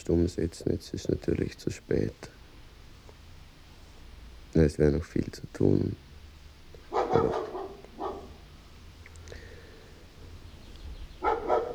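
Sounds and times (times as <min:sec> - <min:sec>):
speech: 0:00.0 - 0:02.4, 0:04.5 - 0:06.0, 0:07.1 - 0:07.5
neighbour's dog barking: 0:06.9 - 0:08.5, 0:11.2 - 0:11.7.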